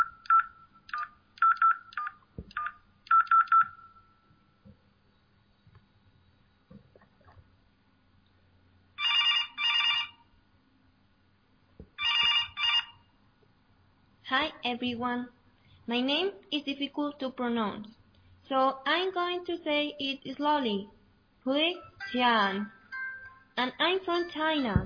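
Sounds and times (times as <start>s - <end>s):
telephone keypad dialing beeps: 0.0s - 4.0s
double-pulse telephone ringing tones: 2.6s - 4.3s, 9.0s - 10.3s, 12.0s - 13.1s
speech: 14.3s - 22.8s, 23.6s - 24.8s.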